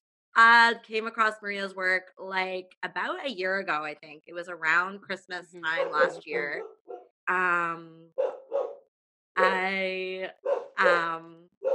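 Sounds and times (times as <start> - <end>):
speech: 0.4 - 8.3, 9.4 - 11.7
male dog barking and howling: 5.7 - 7.1, 8.2 - 8.8, 10.4 - 11.7.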